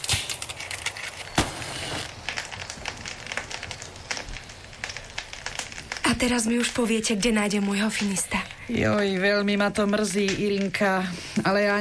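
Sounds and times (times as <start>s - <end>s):
sharp snap of fire: 0.0s - 6.8s
fire being lit and flaring with a soft rushing hiss: 0.0s - 11.7s
speech: 6.1s - 11.7s.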